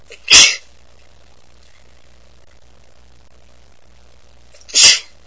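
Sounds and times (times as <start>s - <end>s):
woman sneezing softly: 0.1s - 0.7s, 4.6s - 5.1s.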